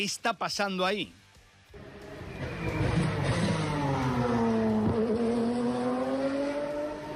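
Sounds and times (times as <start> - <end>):
speech: 0.0 - 1.2
Formula 3 race car engines roaring as cars pass: 1.8 - 7.1.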